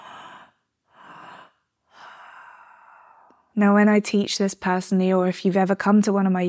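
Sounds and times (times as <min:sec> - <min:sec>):
person doing breathing exercise, two inhales for every exhale: 0:00.0 - 0:03.5
speech: 0:03.6 - 0:06.4.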